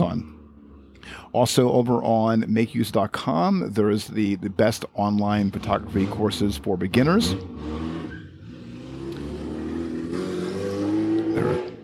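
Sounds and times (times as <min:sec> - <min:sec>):
speech: 0:00.0 - 0:00.4, 0:01.1 - 0:07.9, 0:11.4 - 0:11.7
loud car engines rumbling past: 0:00.0 - 0:02.4, 0:05.2 - 0:11.8
car revving and accelerating with harmonic whine: 0:05.5 - 0:11.8.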